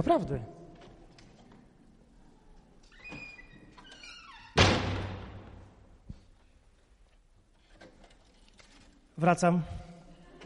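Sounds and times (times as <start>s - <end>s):
speech: 0.0s - 0.6s, 9.2s - 9.8s
door creaking open with a squeaky whine: 2.8s - 5.5s
door swinging shut with a solid thunk: 4.5s - 5.6s.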